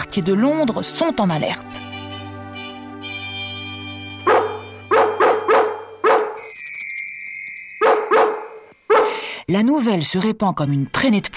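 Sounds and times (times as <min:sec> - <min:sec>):
speech: 0:00.2 - 0:01.9, 0:09.5 - 0:11.3
dogs barking in short bursts: 0:04.3 - 0:06.4, 0:07.8 - 0:09.2.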